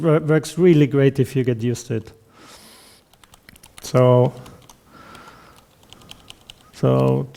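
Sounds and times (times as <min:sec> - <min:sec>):
speech: 0:00.0 - 0:02.2, 0:03.9 - 0:04.5, 0:06.8 - 0:07.3
computer keyboard clicks while editing text in the Vim editor: 0:03.1 - 0:07.3.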